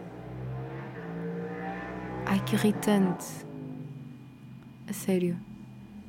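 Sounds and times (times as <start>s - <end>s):
motorcycle passing by outside: 0.0s - 4.5s
speech: 2.3s - 3.5s, 4.9s - 5.5s.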